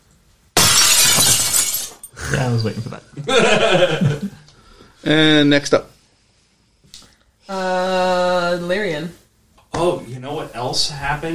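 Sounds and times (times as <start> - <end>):
glass shattering: 0.6 - 2.1
speech: 2.3 - 4.4, 5.0 - 5.9, 7.5 - 9.2, 9.8 - 11.3
laughter: 2.8 - 4.5.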